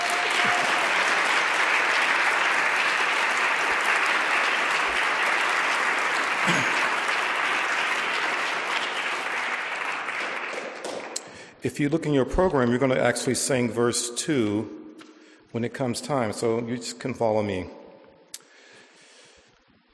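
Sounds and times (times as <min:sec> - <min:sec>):
large audience applauding: 0:00.0 - 0:11.5
speech: 0:11.6 - 0:14.8, 0:15.5 - 0:17.8.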